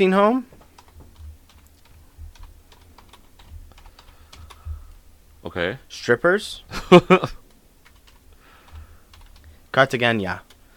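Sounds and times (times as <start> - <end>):
speech: 0.0 - 0.5, 5.4 - 7.4, 9.8 - 10.5
typing on a computer keyboard: 0.5 - 5.0, 7.4 - 9.6
soft low thumping: 0.5 - 5.4.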